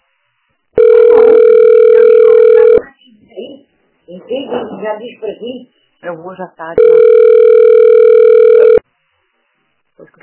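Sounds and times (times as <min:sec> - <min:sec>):
faint noise: 0:00.0 - 0:10.2
phone ringback tone: 0:00.8 - 0:02.8, 0:06.8 - 0:08.8
speech: 0:04.7 - 0:07.5.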